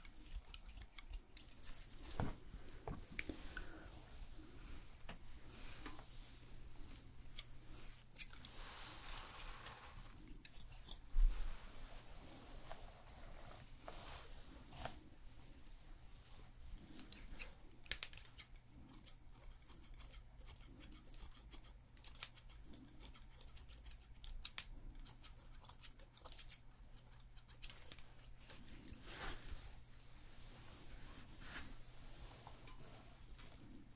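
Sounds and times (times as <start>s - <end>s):
scissors snipping hair during a haircut in a hair salon: 0.0s - 1.9s, 8.1s - 8.5s, 10.3s - 11.1s, 17.1s - 29.0s
soft rustling during a haircut: 1.0s - 18.2s, 27.6s - 33.9s.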